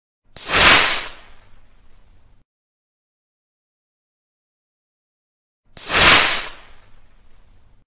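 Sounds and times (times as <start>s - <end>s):
bottle rocket: 0.4s - 1.6s, 5.7s - 7.4s.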